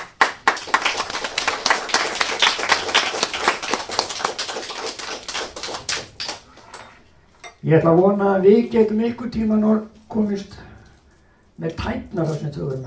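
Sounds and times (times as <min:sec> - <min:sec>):
audience applause: 0:00.0 - 0:06.5
speech: 0:07.6 - 0:10.6, 0:11.6 - 0:12.8.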